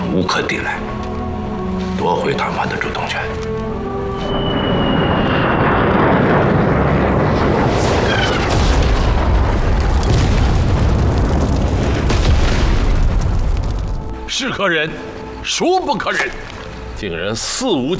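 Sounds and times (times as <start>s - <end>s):
speech: 0.1s - 1.0s, 2.0s - 3.7s, 14.3s - 17.9s
loud whine of US military aircraft overhead: 2.6s - 9.4s
heavy continuous explosive rumbling from bombing raid: 4.2s - 14.2s.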